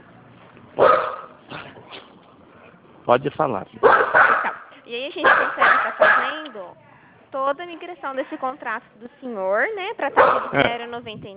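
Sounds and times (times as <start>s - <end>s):
dog barking: 0.8s - 1.4s, 3.8s - 6.5s, 10.1s - 10.6s
speech: 3.1s - 11.3s.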